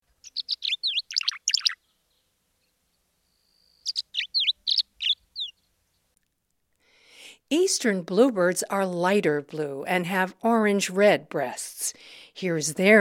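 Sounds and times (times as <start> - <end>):
tree swallows twittering over a field: 0.2 - 2.3, 3.2 - 5.7
speech: 7.5 - 12.9.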